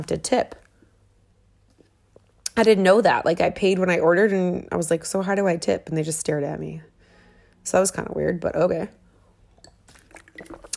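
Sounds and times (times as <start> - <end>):
speech: 0.0 - 0.6, 2.6 - 6.9, 7.6 - 9.0, 10.4 - 10.7
person sipping water: 9.5 - 10.7
swallowing: 9.9 - 10.7.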